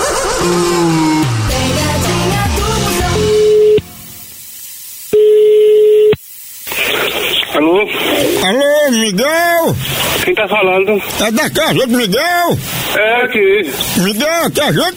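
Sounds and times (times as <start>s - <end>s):
music: 0.0s - 4.2s
speech: 0.4s - 1.0s, 9.7s - 14.9s
telephone line noise hiss: 1.8s - 14.9s
telephone ringback tone on a prank call: 3.4s - 3.8s, 5.2s - 6.1s.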